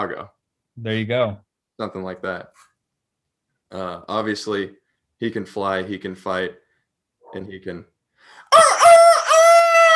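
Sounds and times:
speech: 0.0s - 2.7s, 3.7s - 6.6s, 7.3s - 7.9s
person's voice imitating a rooster crowing cock-a-doodle-doo: 8.4s - 9.9s.

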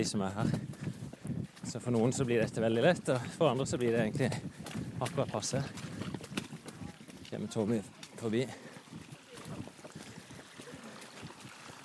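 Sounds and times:
speech: 0.0s - 0.9s, 1.6s - 5.9s, 7.3s - 8.6s
water rushing in a stream: 5.1s - 11.8s.

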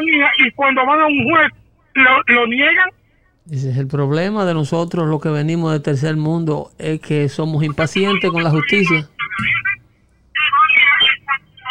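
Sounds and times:
tinny garbled voice over a breaking-up phone connection: 0.0s - 2.9s, 7.6s - 11.6s
speech: 0.0s - 9.6s.

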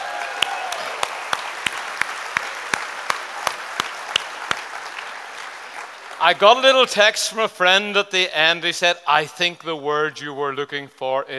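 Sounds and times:
audience applause: 0.0s - 6.9s
speech: 6.2s - 11.3s.

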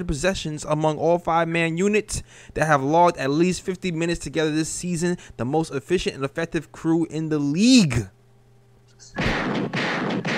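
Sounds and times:
speech: 0.0s - 8.2s
loud gunshot sound effects in a dense barrage: 9.2s - 10.3s.

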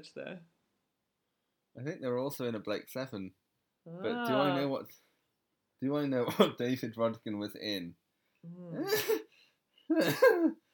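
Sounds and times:
speech: 0.0s - 0.6s, 1.8s - 5.1s, 5.8s - 9.3s, 9.9s - 10.6s
person coughing: 6.3s - 6.6s, 9.9s - 10.5s.

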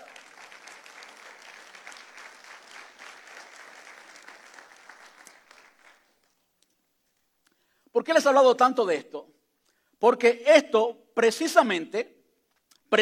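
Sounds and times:
congregation applauding: 0.0s - 6.4s
speech: 8.0s - 9.2s, 10.0s - 12.2s.

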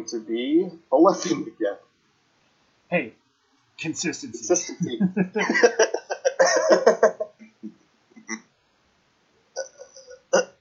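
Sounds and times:
speech: 0.0s - 1.8s, 2.9s - 3.2s, 3.8s - 7.1s
laughter: 4.5s - 7.4s
person coughing in a harsh rattling fit: 5.6s - 7.0s.

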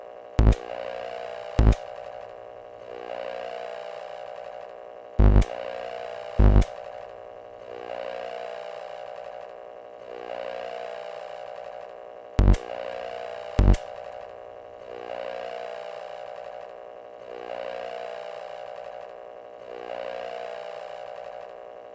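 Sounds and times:
empty cassette player running without a tape: 0.0s - 2.9s, 5.2s - 7.7s, 11.9s - 14.9s.

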